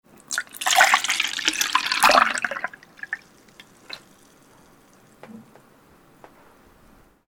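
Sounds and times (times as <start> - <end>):
pouring: 0.2 - 4.4.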